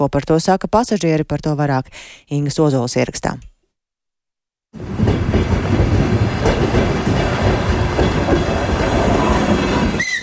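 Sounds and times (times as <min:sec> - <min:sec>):
speech: 0:00.0 - 0:03.5, 0:04.7 - 0:05.6
passenger train rumbling along rails at a railway station: 0:04.8 - 0:10.2
brief high squeal of a passenger train: 0:09.1 - 0:10.2.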